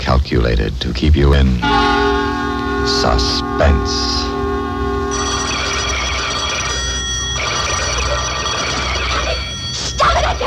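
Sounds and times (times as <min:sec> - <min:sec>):
speech: 0:00.1 - 0:02.2, 0:02.8 - 0:04.4
telephone bell ringing: 0:05.0 - 0:10.4.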